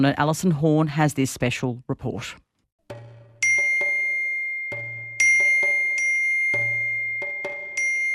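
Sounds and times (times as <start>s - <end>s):
speech: 0.0s - 2.4s
phone text message notification chimes: 3.4s - 8.1s.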